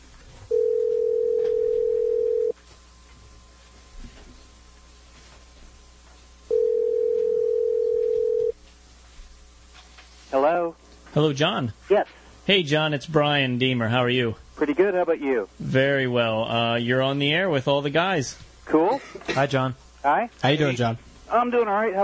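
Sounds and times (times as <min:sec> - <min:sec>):
telephone line tone beeps as a call is placed: 0:00.5 - 0:02.5, 0:06.5 - 0:08.5
speech: 0:11.2 - 0:22.0.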